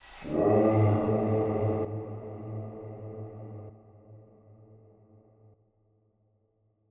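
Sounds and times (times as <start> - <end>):
vocal pack vocals in A minor: 0.0 - 5.3.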